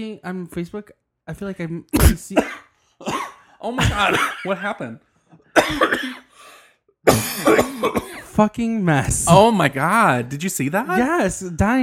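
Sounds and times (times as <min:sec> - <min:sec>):
speech: 0:00.0 - 0:02.7, 0:03.6 - 0:11.8
harsh coughing: 0:02.0 - 0:08.4.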